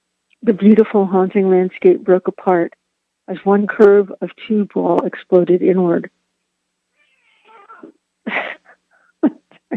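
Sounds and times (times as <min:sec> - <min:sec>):
speech: 0:00.4 - 0:06.2
cat meowing and yowling: 0:07.0 - 0:07.9.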